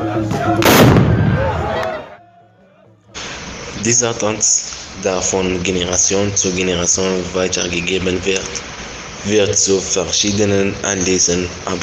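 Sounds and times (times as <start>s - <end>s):
fired gunpowder charge exploding: 0.6s - 1.6s
speech: 3.8s - 11.8s.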